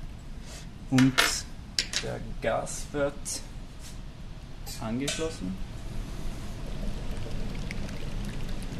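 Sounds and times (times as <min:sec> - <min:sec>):
speech: 0:00.9 - 0:01.4, 0:02.0 - 0:03.5, 0:04.8 - 0:05.7
colourless liquid poured through long tubes into chambers of a laboratory device: 0:06.3 - 0:08.7.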